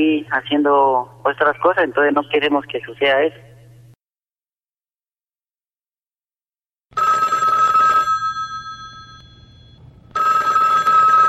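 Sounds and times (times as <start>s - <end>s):
speech: 0.0s - 3.5s
telephone ringing with an incoming call: 6.9s - 11.2s.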